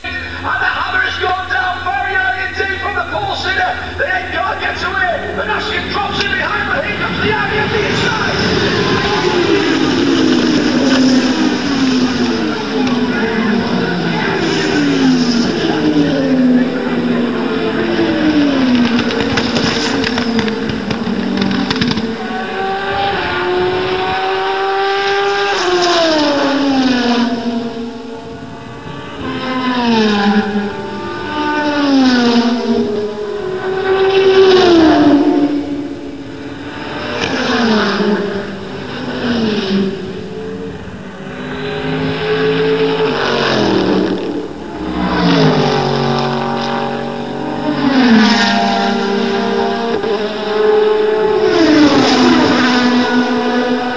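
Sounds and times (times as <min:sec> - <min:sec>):
race ambience: 0:00.0 - 0:53.9.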